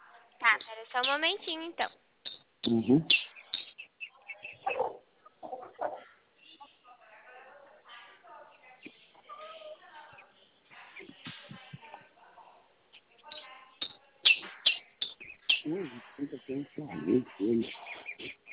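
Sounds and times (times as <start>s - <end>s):
indistinct voices talking: 0.0s - 1.9s, 2.6s - 12.4s, 13.0s - 18.5s
chickens clucking: 0.4s - 1.6s, 2.6s - 6.8s, 7.6s - 12.1s, 14.2s - 18.5s
speech: 0.8s - 2.0s, 2.6s - 3.3s, 16.5s - 18.4s.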